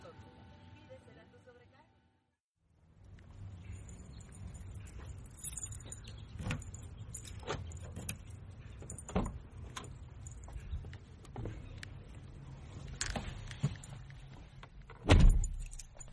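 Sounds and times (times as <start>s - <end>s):
keys jingling and clattering: 3.5s - 16.1s.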